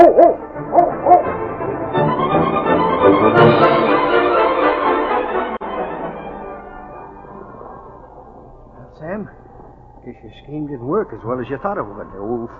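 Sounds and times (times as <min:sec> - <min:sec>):
dog barking: 0:00.0 - 0:01.3
speech: 0:00.0 - 0:01.7, 0:10.1 - 0:12.5
dense steady sound: 0:00.3 - 0:12.5.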